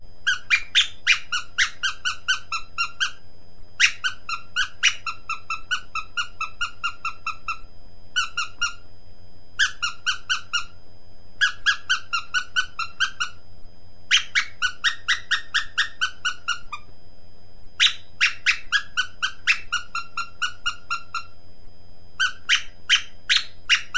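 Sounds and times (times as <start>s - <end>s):
bird squeaker: 0.2s - 3.2s, 3.8s - 8.8s, 9.6s - 10.8s, 11.4s - 13.4s, 14.1s - 16.9s, 17.8s - 21.4s, 22.2s - 23.9s.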